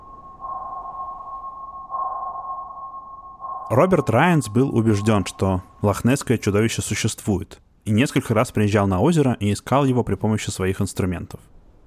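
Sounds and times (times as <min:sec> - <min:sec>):
sonar ping: 0:00.0 - 0:06.5
steady electronic hum: 0:00.0 - 0:07.0
speech: 0:03.7 - 0:11.6.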